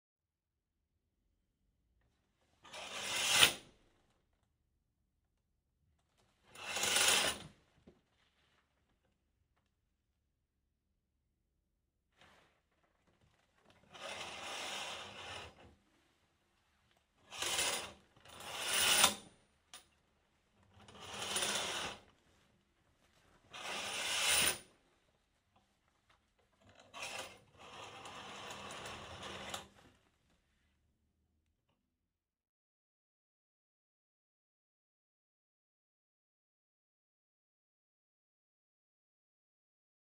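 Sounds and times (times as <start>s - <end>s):
curtain being drawn: 2.5s - 4.0s, 6.2s - 9.1s, 12.1s - 19.5s, 20.6s - 25.1s, 26.2s - 30.6s.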